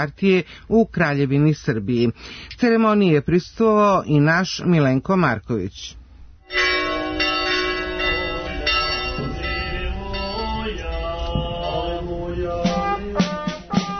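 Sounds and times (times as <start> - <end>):
speech: 0.0 - 6.8
church bells ringing: 6.4 - 13.1.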